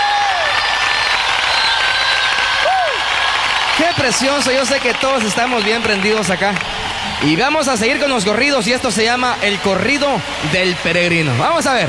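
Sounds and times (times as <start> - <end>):
large stadium crowd applauding: 0.0 - 11.8
crowd whistles: 0.2 - 6.3
speech: 4.0 - 11.8.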